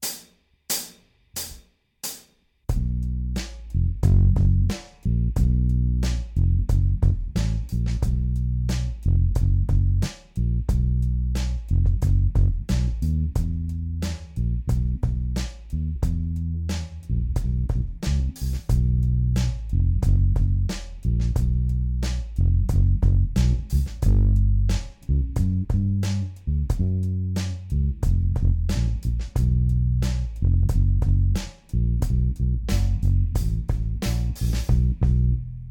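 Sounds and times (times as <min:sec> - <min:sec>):
Aria Pro II PJ bass with jazz bass pickup full on and tone off: 0:02.8 - 0:35.6.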